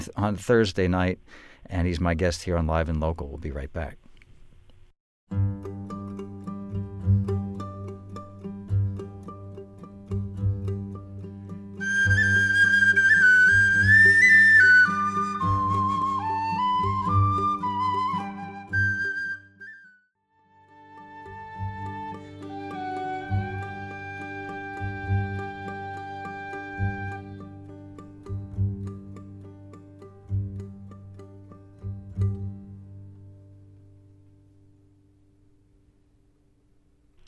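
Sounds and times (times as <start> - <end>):
speech: 0.0 - 4.0, 5.3 - 5.7
strummed guitar: 5.3 - 19.3, 20.6 - 34.7
fiddle playing folk music: 11.8 - 19.2, 20.4 - 27.5
whistle playing a folk melody: 11.8 - 27.5.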